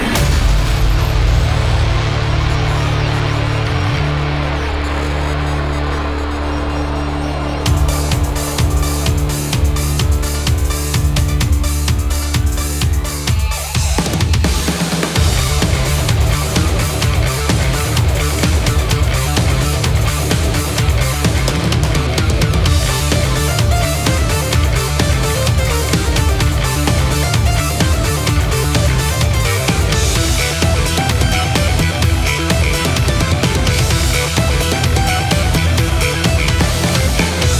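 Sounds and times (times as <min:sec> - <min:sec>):
metal beat: 0:00.2 - 0:37.5.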